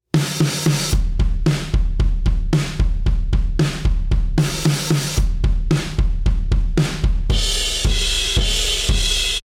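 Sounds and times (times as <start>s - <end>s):
drums with Devil Loc: 0.0s - 9.4s.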